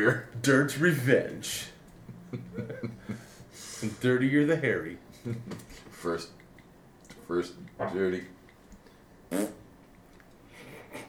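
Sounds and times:
speech: 0:00.0 - 0:01.7, 0:03.8 - 0:06.4, 0:07.3 - 0:08.4, 0:09.3 - 0:09.6
faint breathy noise: 0:03.0 - 0:04.0
short buzzy fart-like burst: 0:09.3 - 0:09.7.

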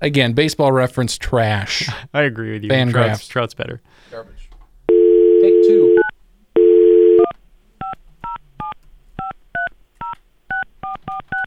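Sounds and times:
speech: 0:00.0 - 0:04.4
short steady telephone tone: 0:04.9 - 0:07.3.

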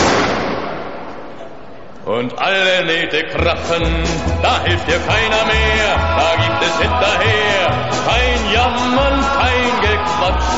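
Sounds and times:
gunshot with long echo: 0:00.0 - 0:01.4
speech: 0:02.1 - 0:10.5.

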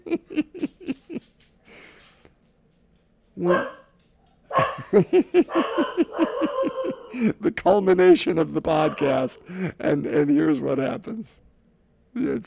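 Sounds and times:
laughter: 0:00.0 - 0:01.3, 0:04.6 - 0:07.6
speech: 0:03.4 - 0:03.8, 0:04.9 - 0:06.5, 0:07.2 - 0:11.5, 0:12.2 - 0:12.4
several dogs barking and yipping: 0:03.4 - 0:07.2.

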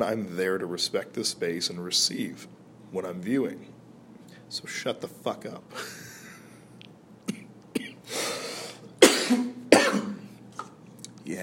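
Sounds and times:
speech: 0:00.0 - 0:03.7, 0:04.5 - 0:06.0
dry cough from a dry throat: 0:07.3 - 0:08.1, 0:09.0 - 0:10.3.

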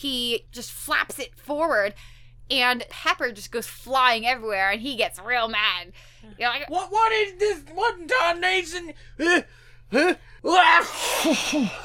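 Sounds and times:
speech: 0:00.0 - 0:11.8
voice imitating a man sneezing hard into a napkin: 0:09.2 - 0:11.8.

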